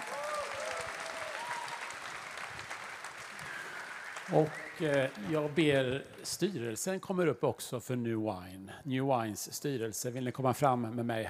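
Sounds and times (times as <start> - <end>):
cheering: 0.0 - 5.6
audience applauding: 0.0 - 6.4
faint whistles: 3.8 - 5.1
speech: 4.3 - 11.2.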